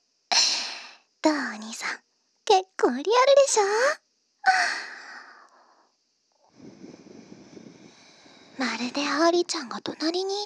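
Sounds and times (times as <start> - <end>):
quieter rougher breathy hiss: 0.3 - 1.1, 4.5 - 9.6
speech: 1.2 - 4.9, 8.6 - 10.4.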